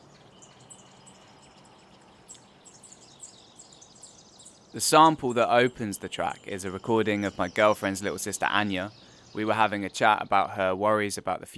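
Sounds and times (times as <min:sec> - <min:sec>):
high bird chirps and short warbling bird calls: 0:00.0 - 0:11.5
speech: 0:04.7 - 0:11.5.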